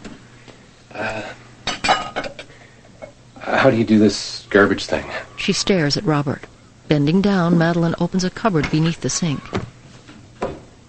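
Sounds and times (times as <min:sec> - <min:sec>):
speech: 0:00.9 - 0:01.4, 0:03.6 - 0:09.7
ceramic dishes clinking and clattering in a kitchen sink: 0:01.7 - 0:03.2.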